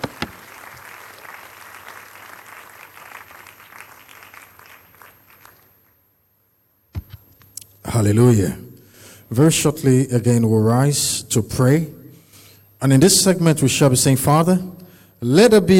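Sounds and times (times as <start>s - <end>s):
sharp knocks or thumps: 0.0s - 0.4s
audience clapping at a church service: 0.0s - 6.0s
speech: 7.9s - 8.6s, 9.3s - 12.0s, 12.8s - 15.7s.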